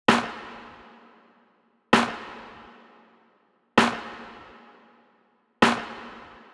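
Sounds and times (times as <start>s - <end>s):
EDM pop kit snare drum hit: 0.1s - 0.7s, 2.0s - 2.5s, 3.8s - 4.4s, 5.6s - 6.5s.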